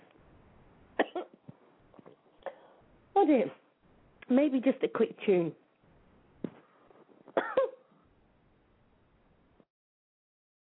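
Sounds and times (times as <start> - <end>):
dry coughs from a tickle in the throat: 1.0 - 1.4, 7.3 - 7.9
speech: 3.2 - 3.6, 4.3 - 5.6.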